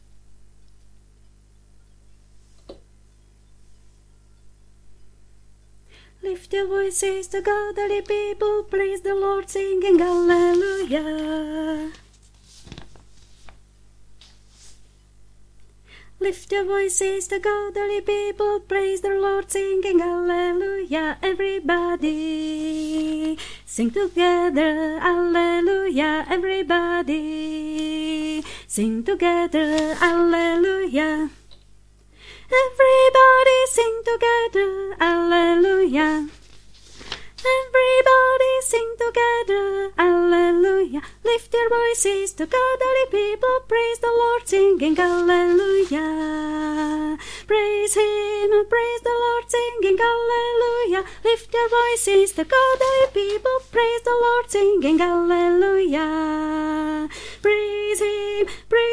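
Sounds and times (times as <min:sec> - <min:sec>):
soprano singing an African psalm: 0:06.2 - 0:12.1, 0:16.2 - 0:31.4, 0:32.5 - 0:36.4, 0:37.4 - 0:58.9.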